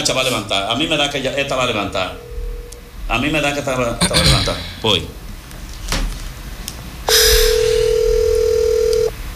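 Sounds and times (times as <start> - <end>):
speech: 0.0 - 2.3, 3.1 - 5.2
telephone ringing with a steady electronic tone: 7.1 - 9.1.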